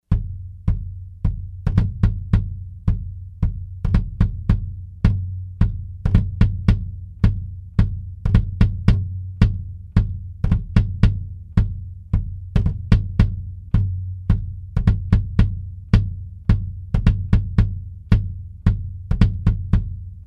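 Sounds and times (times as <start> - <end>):
bass drum at its sound hole: 0.0 - 20.2.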